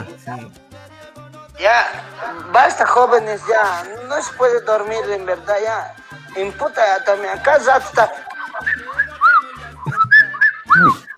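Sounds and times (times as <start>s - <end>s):
speech: 0.1s - 0.7s, 1.6s - 8.3s
laughter: 1.9s - 11.1s
cell phone whistle-style notification tone: 7.8s - 11.1s.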